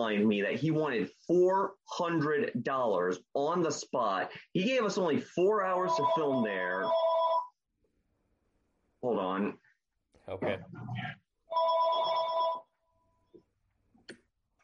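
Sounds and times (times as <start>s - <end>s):
speech: 0.0s - 7.2s, 9.0s - 9.6s, 10.3s - 11.8s
cell phone ringing: 5.8s - 7.6s, 11.5s - 12.9s.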